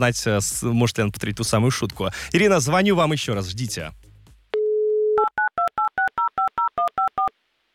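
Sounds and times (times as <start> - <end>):
speech: 0.0 - 4.1
telephone dial tone: 4.6 - 7.3.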